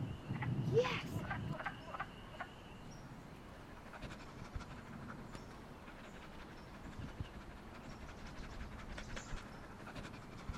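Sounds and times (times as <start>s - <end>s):
chorus of wood frogs croaking: 0.0s - 6.8s
low outdoor noise: 0.0s - 10.5s.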